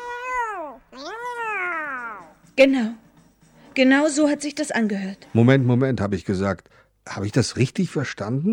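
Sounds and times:
cat meowing: 0.0s - 2.4s
speech: 2.6s - 3.0s, 3.8s - 8.5s.

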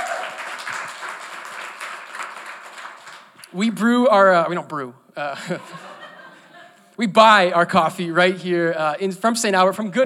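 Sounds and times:
audience applauding with dense clapping: 0.0s - 3.5s
speech: 3.5s - 6.0s, 7.0s - 10.0s
laughter: 5.4s - 6.9s.

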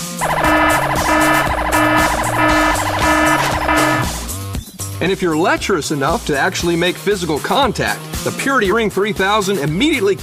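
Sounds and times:
loud piercing electronic alarm siren: 0.0s - 4.4s
speech: 5.0s - 10.2s.

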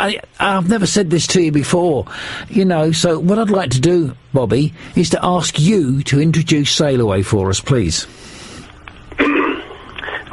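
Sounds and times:
speech: 0.0s - 8.4s
raspy cough: 9.2s - 10.3s.

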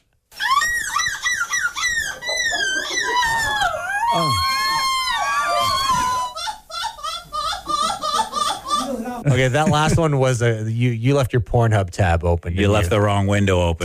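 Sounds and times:
person imitating seagull cries in a seagull-calling contest: 0.4s - 7.2s
laughter: 0.6s - 10.2s
speech: 9.3s - 13.8s.

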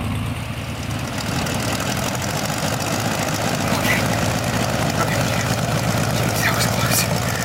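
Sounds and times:
airplane engine drone during takeoff: 0.0s - 7.4s.

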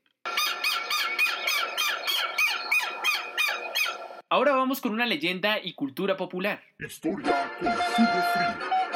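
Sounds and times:
southern lapwing calling: 0.3s - 4.2s
speech: 4.3s - 8.8s.

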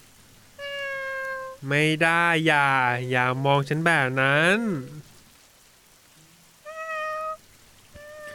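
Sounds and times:
soft hiss like light rain: 0.0s - 8.3s
kitten giving high thin meows: 0.6s - 1.6s, 6.6s - 7.4s, 8.0s - 8.3s
speech: 1.6s - 5.1s.

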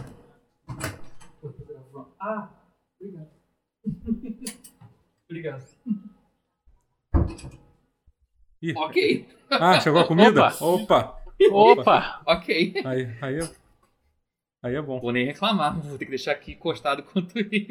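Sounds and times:
door opening and thumping shut: 0.0s - 1.4s, 7.1s - 7.7s
speech: 2.0s - 4.7s, 5.3s - 6.0s, 7.3s - 7.6s, 8.6s - 13.6s, 14.6s - 17.6s
brief laugh: 3.9s - 4.6s, 9.7s - 13.1s.

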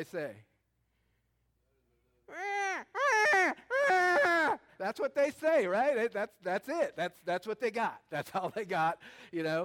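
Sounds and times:
speech: 0.0s - 0.5s, 4.8s - 9.6s
person mimicking a newborn baby crying with wavering wails: 2.3s - 4.6s.

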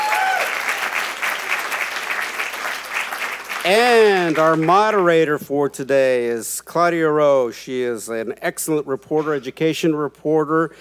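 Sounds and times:
audience applause: 0.0s - 4.7s
speech: 3.6s - 10.7s.

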